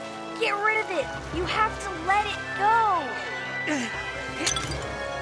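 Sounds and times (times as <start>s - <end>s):
speech: 0.4s - 5.0s
water jug dropping and smashing: 4.4s - 5.1s.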